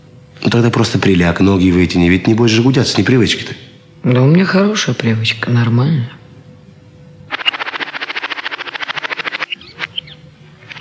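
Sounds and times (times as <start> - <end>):
speech: 0.4 - 6.2
magpies chattering: 7.3 - 10.7.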